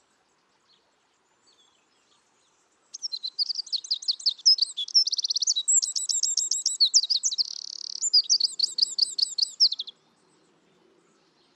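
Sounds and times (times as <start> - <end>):
Eurasian wren Troglodytes troglodytes singing: 2.9 - 10.0.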